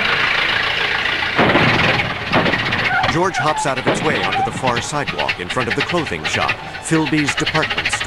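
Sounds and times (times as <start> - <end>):
automobile engine approaching under a stone arch: 0.0 - 8.0
speech: 3.1 - 8.0.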